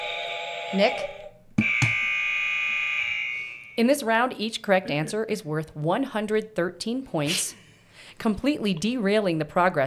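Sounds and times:
game show buzzer pressed by a contestant: 0:00.0 - 0:03.8
speech: 0:00.7 - 0:01.2, 0:03.8 - 0:09.8
game show buzzer clicks: 0:01.6 - 0:02.8.

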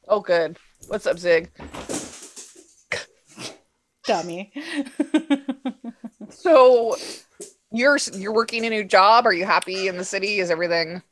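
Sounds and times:
speech: 0:00.1 - 0:01.9, 0:04.1 - 0:11.0
excited female dog yipping: 0:09.7 - 0:10.1.

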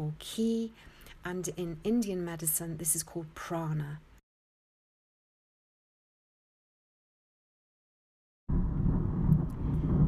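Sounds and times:
speech: 0:00.1 - 0:04.1
thunder rumbling: 0:08.5 - 0:10.0.

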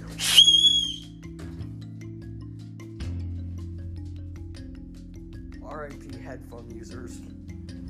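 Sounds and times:
shrill whistle blast blown by a person to call a dog: 0:00.2 - 0:01.2
speech: 0:05.8 - 0:07.4.

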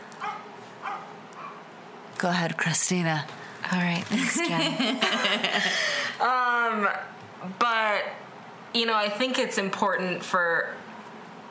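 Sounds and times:
dog barking: 0:00.2 - 0:01.6
speech: 0:02.2 - 0:10.8
laughter: 0:04.1 - 0:06.1.

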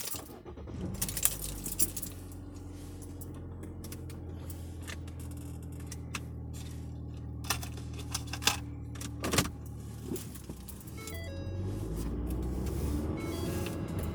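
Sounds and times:
car keys jangling: 0:00.0 - 0:00.3, 0:00.9 - 0:11.3, 0:13.5 - 0:14.1
steady low engine-like rumble: 0:00.0 - 0:14.1.

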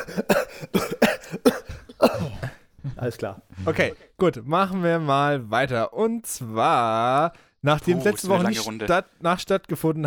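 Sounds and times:
person coughing after smoking shisha: 0:00.0 - 0:02.6
speech: 0:03.2 - 0:10.0.

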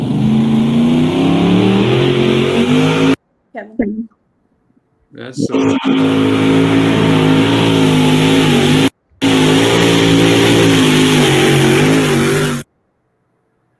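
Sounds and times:
Massetti tractor engine revving: 0:00.0 - 0:03.2, 0:05.4 - 0:12.7
speech: 0:05.2 - 0:07.6.

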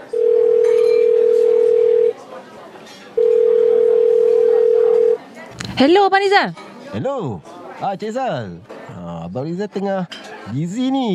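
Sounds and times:
telephone dial tone while a call is being placed: 0:00.1 - 0:02.1, 0:03.2 - 0:05.2
speech: 0:05.8 - 0:11.1.

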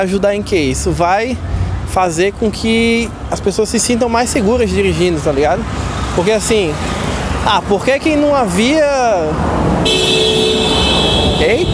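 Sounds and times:
speech: 0:00.0 - 0:10.3
road traffic noise: 0:00.0 - 0:11.7
car horn honking in traffic: 0:09.8 - 0:11.7.

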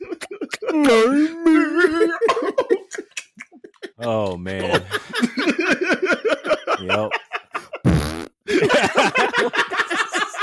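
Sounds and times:
laughter: 0:00.0 - 0:07.9, 0:08.5 - 0:10.4
speech: 0:00.7 - 0:01.4, 0:04.0 - 0:05.0
loud buzzy fart: 0:07.8 - 0:08.4.

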